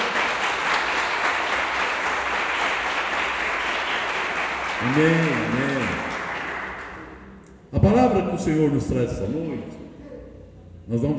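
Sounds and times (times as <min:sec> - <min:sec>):
audience applauding: 0:00.0 - 0:07.4
speech: 0:04.8 - 0:06.1, 0:07.8 - 0:09.8, 0:10.9 - 0:11.1.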